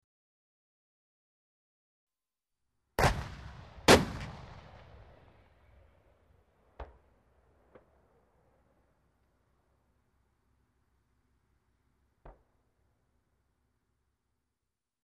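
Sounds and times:
tank gun firing: 0:03.0 - 0:05.2.

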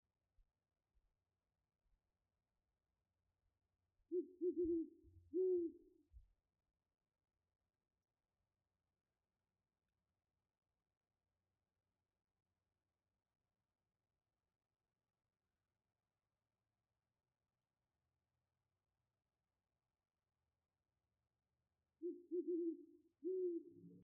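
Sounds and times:
owl: 0:04.1 - 0:06.0, 0:22.0 - 0:24.0.

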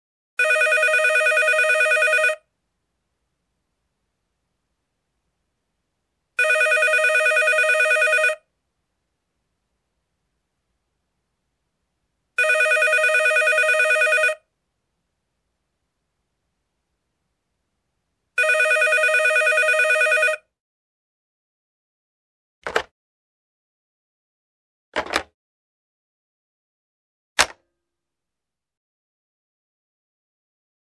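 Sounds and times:
electronic telephone ringing: 0:00.4 - 0:02.5, 0:06.4 - 0:08.5, 0:12.4 - 0:14.5, 0:18.4 - 0:20.5.

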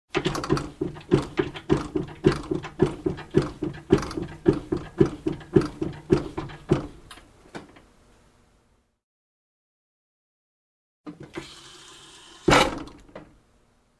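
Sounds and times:
barber chair raised with a foot pump: 0:00.1 - 0:07.1.

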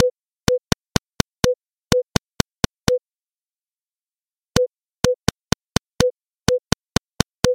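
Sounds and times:
light tapping of a melody with a musical instrument and a hand: 0:00.0 - 0:03.0, 0:04.6 - 0:07.5.

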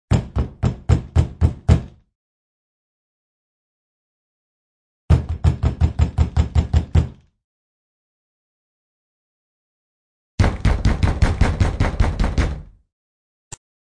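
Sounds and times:
rapid knocking on a door: 0:00.1 - 0:02.0, 0:05.1 - 0:07.3, 0:10.4 - 0:12.7.

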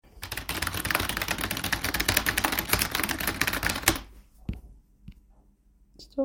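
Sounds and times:
fast keyboard typing: 0:00.0 - 0:04.1.

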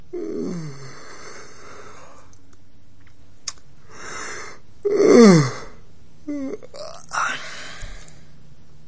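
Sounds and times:
person yawning with air: 0:04.9 - 0:08.0.

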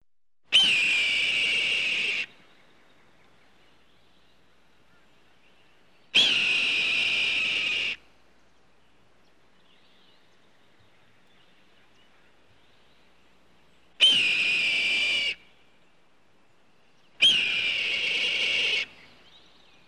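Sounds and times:
red-tailed hawk cries: 0:00.5 - 0:02.3, 0:06.2 - 0:08.0, 0:14.0 - 0:15.4, 0:17.2 - 0:19.0.

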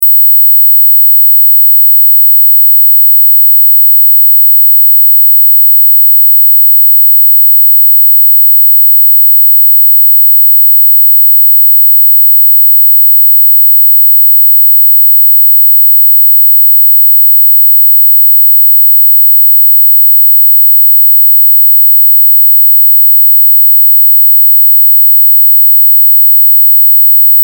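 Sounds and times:
high ultrasound tone: 0:00.0 - 0:27.4.

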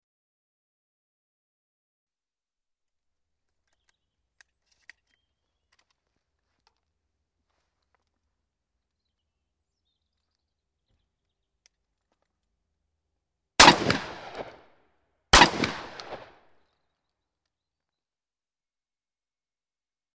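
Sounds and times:
semi-automatic 12-gauge shotgun firing: 0:13.6 - 0:14.6, 0:15.4 - 0:16.4.

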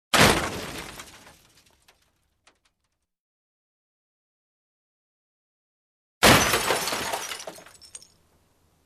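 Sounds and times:
heavy accident crash of glass and metal: 0:00.1 - 0:01.8, 0:06.2 - 0:08.2.

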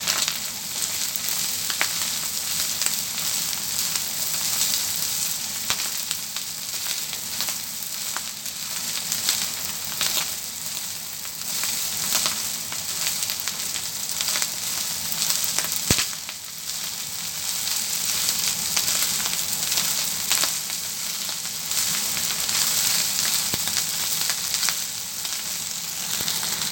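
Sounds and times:
rice frying in a wok: 0:00.0 - 0:26.7.

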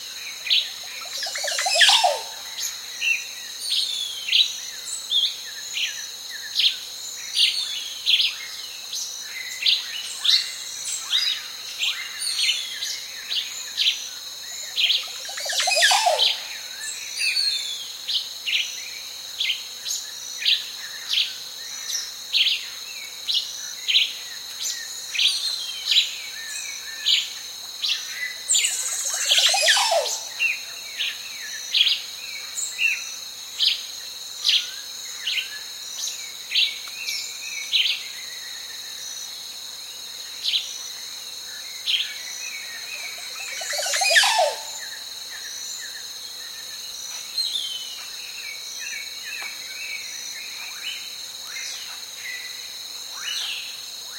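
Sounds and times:
calm cricket chirping: 0:00.0 - 0:54.1
varied clear ringing birdsong on a lake: 0:01.0 - 0:02.3, 0:14.9 - 0:17.0, 0:28.5 - 0:30.6, 0:42.6 - 0:44.9.

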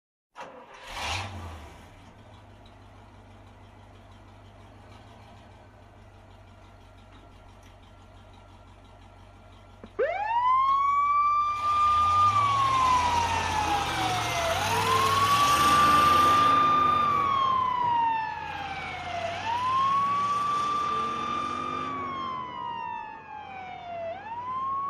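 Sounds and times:
fire engine moving away with siren: 0:09.8 - 0:24.8.

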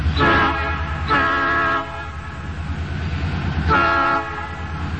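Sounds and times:
train departure horn: 0:00.1 - 0:02.6, 0:03.6 - 0:04.9.

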